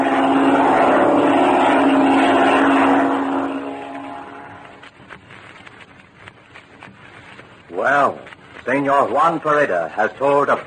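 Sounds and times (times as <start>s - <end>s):
propeller plane engine droning: 0.0s - 5.8s
speech: 8.8s - 10.6s.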